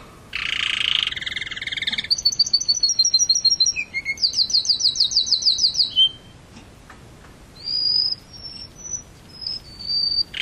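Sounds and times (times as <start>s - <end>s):
canary singing with rapid high trills: 0.3s - 6.5s, 7.5s - 10.3s.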